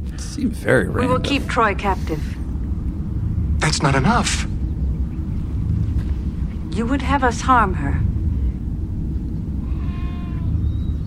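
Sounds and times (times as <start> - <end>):
heavy constant low rumble: 0.0 - 11.0
speech: 0.4 - 2.4, 3.7 - 4.5, 6.8 - 8.1
goat bleating: 9.6 - 10.5.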